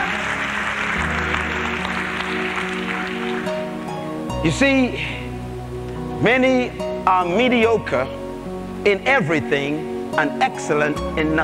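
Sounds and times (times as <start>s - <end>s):
congregation clapping hands: 0.0s - 4.3s
sustained organ-like musical tones: 0.0s - 11.4s
speech: 4.4s - 5.2s, 6.2s - 8.2s, 8.8s - 11.4s.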